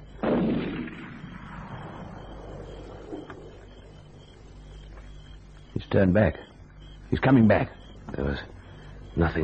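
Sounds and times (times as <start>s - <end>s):
gunshot fired at a tree outdoors: 0.2s - 3.2s
speech: 5.9s - 6.5s, 7.1s - 8.6s, 9.2s - 9.4s.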